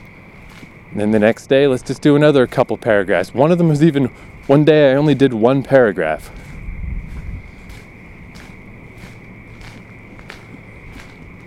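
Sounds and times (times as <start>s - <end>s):
constant high-pitched tone: 0.0s - 11.4s
footsteps walking outdoors at night: 0.0s - 11.4s
speech: 0.9s - 6.4s
low rumble: 6.3s - 11.4s.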